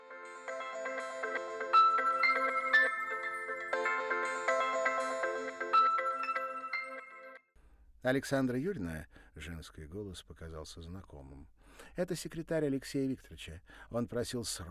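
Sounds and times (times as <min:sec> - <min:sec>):
mobile phone ringing with a bright electronic melodic ringtone: 0:00.2 - 0:07.4
speech: 0:08.0 - 0:14.6.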